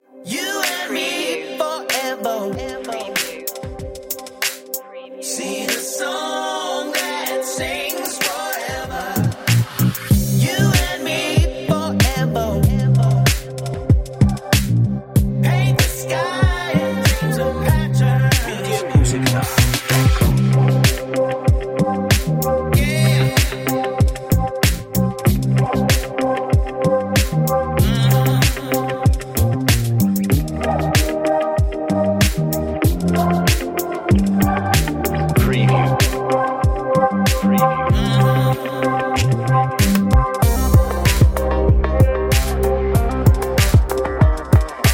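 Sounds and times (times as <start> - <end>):
dark indie electronic music: 0.0 - 44.9.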